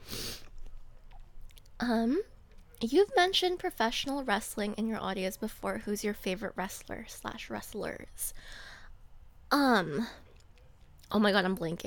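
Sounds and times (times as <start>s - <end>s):
crunchy fruit being bitten and chewed: 0.4s - 2.8s
speech: 1.8s - 8.7s, 9.5s - 10.2s, 11.1s - 11.8s.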